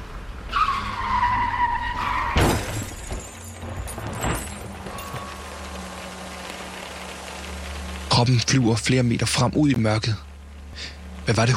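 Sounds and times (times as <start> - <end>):
car tires screeching in a long skid in pouring rain: 0.4 - 8.2
loud crashing impact of a car hitting a large figure on the road: 2.0 - 5.0
scattered clattering and breaking debris: 2.3 - 6.7
speech: 8.2 - 11.5.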